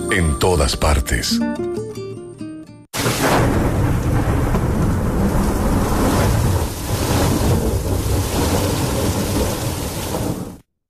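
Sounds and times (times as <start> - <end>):
speech: 0.2 - 1.8
deep rumbling thunder: 3.0 - 10.6
heavy rain falling outside: 3.0 - 10.7.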